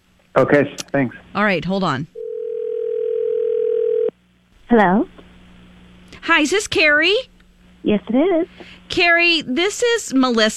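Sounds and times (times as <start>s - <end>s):
speech: 0.4s - 2.2s, 4.7s - 5.2s, 6.2s - 10.5s
telephone dial tone while placing call: 2.2s - 4.1s.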